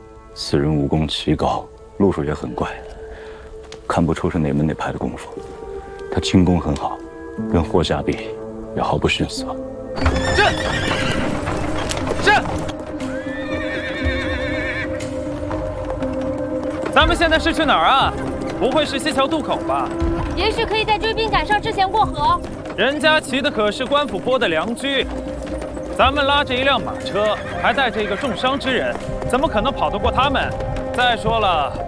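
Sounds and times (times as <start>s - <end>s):
speech: 0.4s - 2.9s, 3.9s - 11.2s, 17.0s - 31.8s
hooves of a horse pulling a carriage clip-clopping: 1.1s - 8.4s, 10.0s - 31.8s
horse pulling a carriage whinnying: 10.0s - 15.9s, 25.2s - 29.6s.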